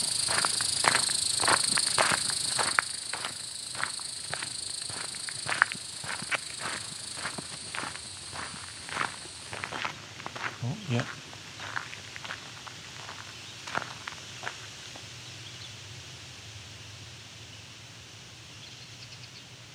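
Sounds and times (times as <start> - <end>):
crunching footsteps: 0.0 - 14.7
cicadas buzzing: 0.0 - 19.7.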